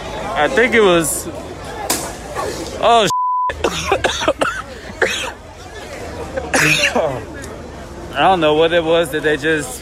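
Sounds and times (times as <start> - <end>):
agitated crowd chatter: 0.0 - 9.8
speech: 0.4 - 1.5, 2.8 - 3.1, 8.2 - 9.8
people coughing from tear gas: 3.5 - 5.5, 6.4 - 7.3.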